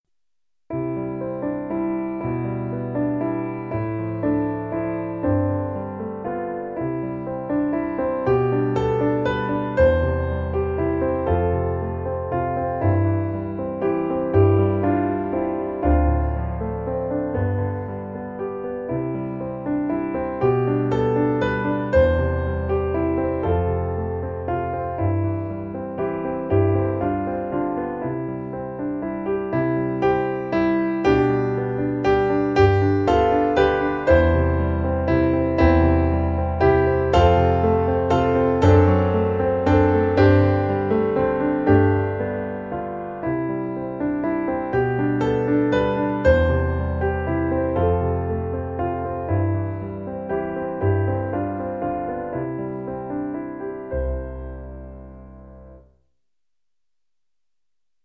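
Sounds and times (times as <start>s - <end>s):
piano piece: 0.7s - 56.0s.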